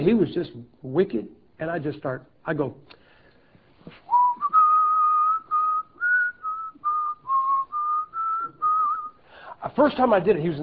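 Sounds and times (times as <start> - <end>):
speech: 0.0 - 3.0, 9.6 - 10.6
person whistling: 4.0 - 9.2.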